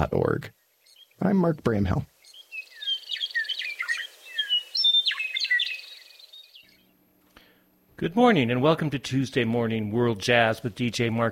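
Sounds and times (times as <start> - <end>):
speech: 0.0 - 0.6, 1.2 - 2.1, 8.0 - 11.2
bird singing high whistles, trills and chirps: 0.2 - 7.0.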